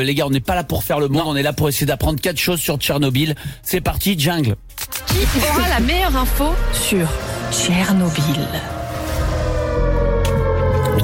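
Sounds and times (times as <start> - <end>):
speech: 0.0 - 8.8
siren wailing: 5.8 - 11.0.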